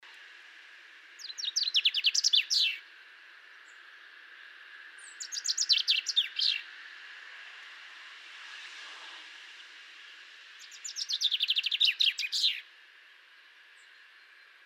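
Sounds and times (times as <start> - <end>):
steady hiss of background noise: 0.0 - 14.6
common chaffinch Fringilla coelebs singing descending chirpy notes: 1.2 - 2.8, 5.1 - 6.6, 10.6 - 12.6.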